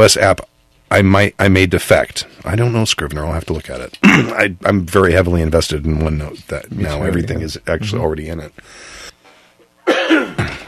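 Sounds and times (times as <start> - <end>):
speech: 0.0 - 9.0
person coughing: 4.0 - 4.5, 9.8 - 10.6
throaty sound: 4.0 - 4.5.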